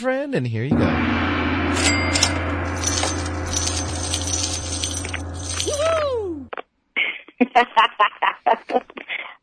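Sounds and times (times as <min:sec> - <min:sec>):
speech: 0:00.0 - 0:02.3, 0:07.6 - 0:09.1
gong ringing: 0:00.7 - 0:06.2
people laughing: 0:07.0 - 0:09.3.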